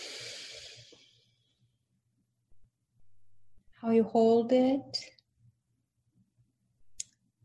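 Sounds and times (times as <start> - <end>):
slow breathing during a guided breathing exercise: 0.0 - 1.3
speech: 3.8 - 5.1.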